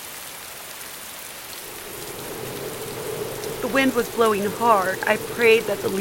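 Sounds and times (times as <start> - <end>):
heavy rain pouring: 0.0 - 5.9
faint low rumble: 1.6 - 5.9
speech: 3.6 - 5.9.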